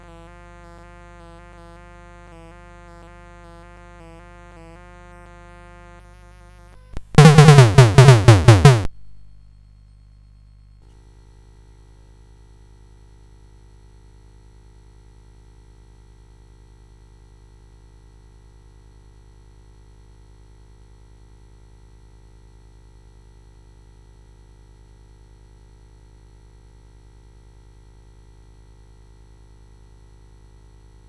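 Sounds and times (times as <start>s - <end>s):
drums: 7.0s - 9.2s.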